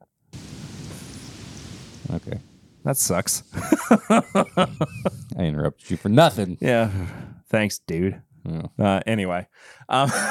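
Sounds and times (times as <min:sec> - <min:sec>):
heavy rain pouring: 0:00.4 - 0:05.1
speech: 0:02.1 - 0:10.2
laughter: 0:03.5 - 0:05.4, 0:10.0 - 0:10.2.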